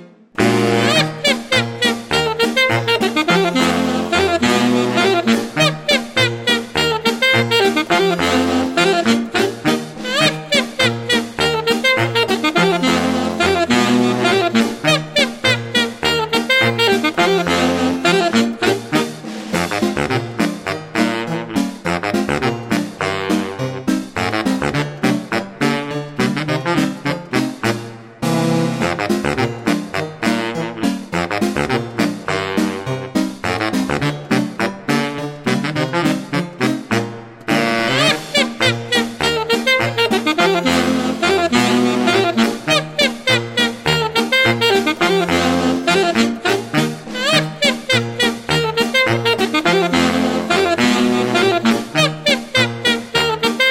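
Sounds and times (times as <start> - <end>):
laughing saxophone: 0.4 - 23.6, 24.2 - 32.9, 33.5 - 53.7.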